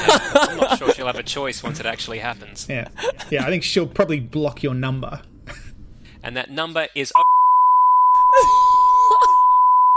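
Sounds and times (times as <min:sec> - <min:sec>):
laughter: 0:00.0 - 0:04.1, 0:08.3 - 0:09.4
speech: 0:01.2 - 0:05.3, 0:06.2 - 0:07.2
man's voice imitating a steady high-pitched censor beep: 0:07.2 - 0:09.9.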